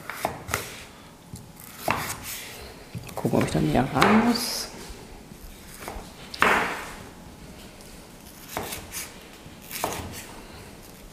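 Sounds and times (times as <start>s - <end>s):
knife cutting Hokkaido pumpkin with skin into strips: 0.0s - 0.7s, 1.6s - 2.4s, 3.0s - 4.5s, 5.8s - 6.9s, 8.4s - 10.3s
speech: 3.2s - 4.7s.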